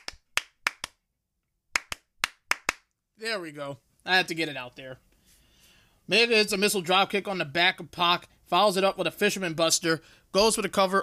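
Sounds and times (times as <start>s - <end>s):
single person clapping a rhythmic pattern: 0.0s - 1.0s, 1.7s - 2.9s
speech: 3.2s - 5.1s, 6.1s - 11.0s.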